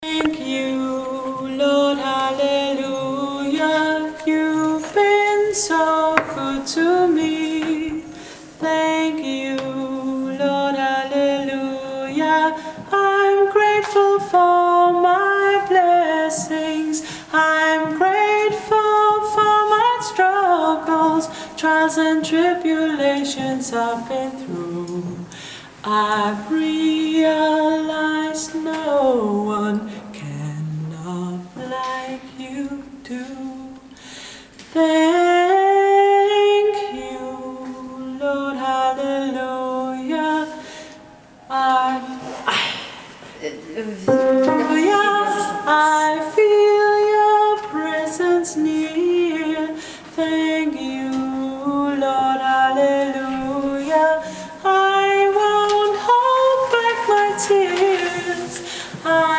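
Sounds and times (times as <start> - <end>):
soprano singing: 0.0 - 34.0, 34.7 - 42.6, 44.0 - 59.3.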